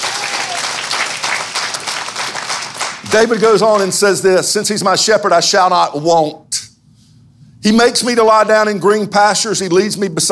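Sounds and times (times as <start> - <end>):
church congregation applauding with hand claps during a sermon: 0.0 - 4.1
speech: 3.1 - 6.7, 7.6 - 10.3.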